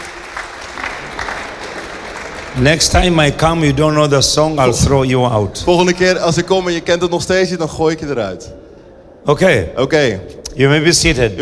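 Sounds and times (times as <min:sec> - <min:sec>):
congregation applauding a song at a church mission service in Holland: 0:00.0 - 0:04.6
speech: 0:02.6 - 0:08.6, 0:09.2 - 0:11.3.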